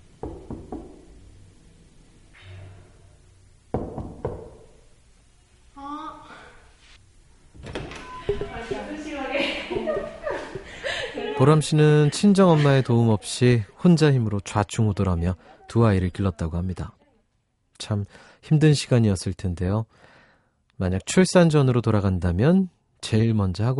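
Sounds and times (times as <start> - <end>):
light sharp knocks on the front door of a family home: 0.2 - 1.1, 3.7 - 4.7
people talking and chuckling: 8.1 - 13.6
speech: 11.4 - 17.0, 17.8 - 20.1, 20.8 - 23.7.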